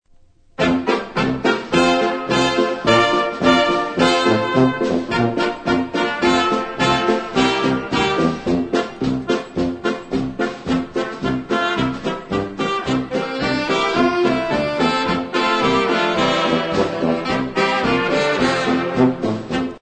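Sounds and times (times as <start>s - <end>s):
polka music: 0.6s - 19.8s.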